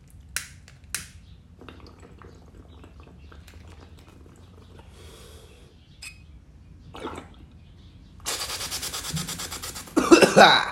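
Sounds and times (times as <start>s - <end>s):
water pipe gurgling as a person draws on a bong: 1.4s - 5.1s, 6.8s - 7.6s
person coughing harshly after smoking a bong: 9.9s - 10.7s.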